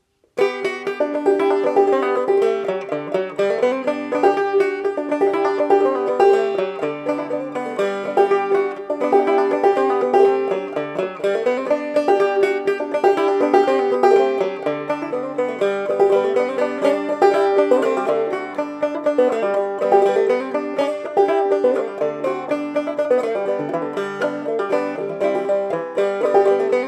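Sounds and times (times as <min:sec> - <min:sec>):
banjo in G: 0:00.0 - 0:26.8.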